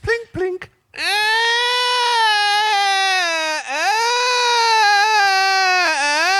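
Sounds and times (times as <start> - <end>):
newborn baby crying with a high strained wail: 1.0 - 6.3.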